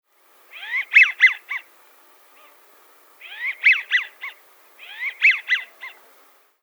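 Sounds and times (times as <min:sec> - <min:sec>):
wigeon calling: 0:00.4 - 0:06.4.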